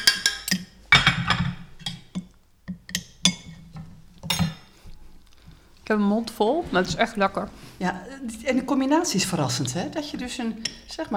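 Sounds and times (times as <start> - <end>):
spoon clinking and scraping against a dish while scooping baked filling: 0.0 - 3.6, 10.6 - 10.9
speech: 5.9 - 11.1.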